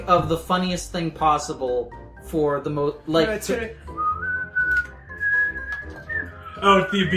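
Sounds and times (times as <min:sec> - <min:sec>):
speech: 0:00.0 - 0:03.9, 0:06.6 - 0:07.1
person whistling a slow melody imitating a penny whistle: 0:03.8 - 0:07.1.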